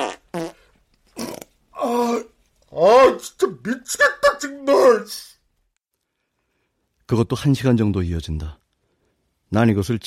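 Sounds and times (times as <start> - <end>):
fart sounds: 0.0 - 1.6
speech: 2.8 - 5.3, 7.1 - 8.6, 9.5 - 10.0.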